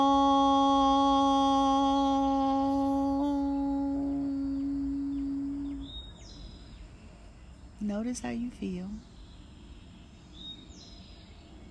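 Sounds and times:
low ambient rumble: 0.0s - 11.7s
faint birds chirping: 3.4s - 11.7s
speech: 7.9s - 9.1s.

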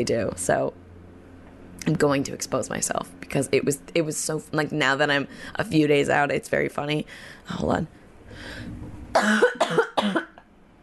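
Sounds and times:
speech: 0.0s - 0.8s, 1.8s - 10.2s
person having a coughing fit: 9.1s - 10.4s.

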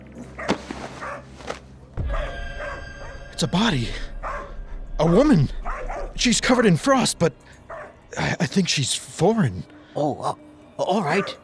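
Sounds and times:
dogs barking excitedly over a found body: 0.4s - 1.4s, 4.2s - 4.5s, 7.7s - 8.0s
speech: 3.4s - 4.1s, 5.0s - 5.6s, 6.2s - 11.4s.

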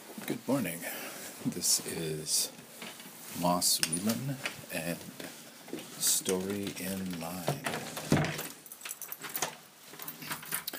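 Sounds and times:
fabric rustling: 0.0s - 10.5s
speech: 0.5s - 2.6s, 3.4s - 7.9s
light metallic jingling: 8.3s - 10.6s.

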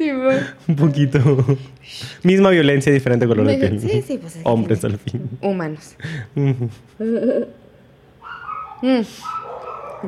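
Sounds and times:
speech: 0.0s - 7.6s, 8.8s - 9.4s
laughter: 0.9s - 1.7s
dogs barking: 8.2s - 10.0s.

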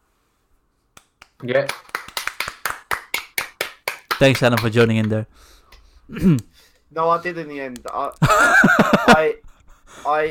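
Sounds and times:
small round of hand clapping: 0.9s - 5.2s
speech: 1.4s - 2.0s, 4.2s - 9.4s, 10.0s - 10.2s
laughter: 8.2s - 9.4s.

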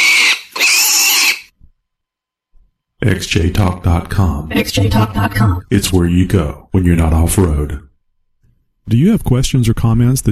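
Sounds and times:
pig oinking and squealing: 0.0s - 1.5s
speech: 3.0s - 7.9s, 8.9s - 10.3s.

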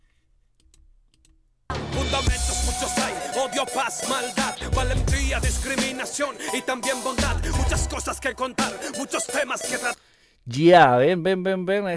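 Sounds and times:
male voice rapping over a dense urban street-style beat: 1.8s - 10.0s
speech: 2.1s - 11.9s
deep booming bass notes in long sustained hits: 4.6s - 5.7s, 7.2s - 8.0s.

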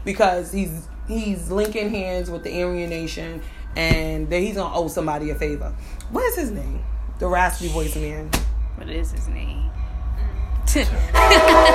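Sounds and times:
speech: 0.0s - 9.8s, 10.7s - 11.7s
steady low rumble: 0.0s - 11.7s
passing train horn blaring: 9.8s - 11.7s.

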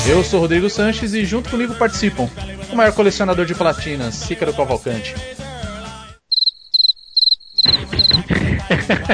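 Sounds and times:
speech: 0.2s - 5.5s, 8.9s - 9.1s
crickets chirping in short high trilled bursts: 6.3s - 8.2s
laughter: 7.6s - 9.1s.

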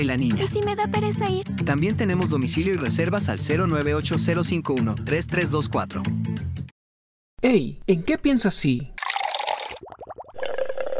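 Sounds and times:
speech: 0.0s - 6.7s, 7.4s - 8.9s
bubbling liquid: 9.0s - 10.9s.

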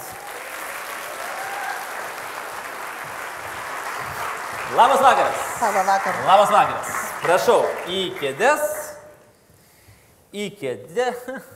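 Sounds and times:
audience applause welcoming guests onto a chat-show set: 0.0s - 9.2s
speech: 4.7s - 8.7s, 10.3s - 11.5s.

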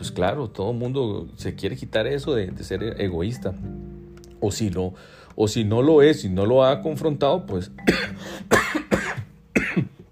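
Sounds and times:
speech: 0.0s - 8.7s
harsh raspy coughing fit: 7.9s - 10.0s.

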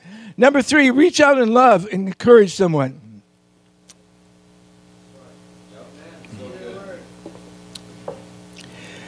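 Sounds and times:
steady low hum: 0.0s - 9.0s
speech: 0.4s - 3.0s
person sipping water with throat dry after tongue cancer: 8.6s - 8.8s.

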